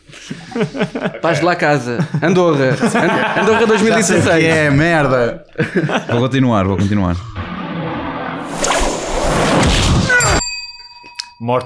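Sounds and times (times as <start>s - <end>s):
laughter: 0.0s - 7.3s
speech: 0.6s - 7.4s, 11.4s - 11.6s
dramatic cinematic fantasy whip lash swish: 8.5s - 10.2s
bright metallic ring: 10.2s - 11.6s.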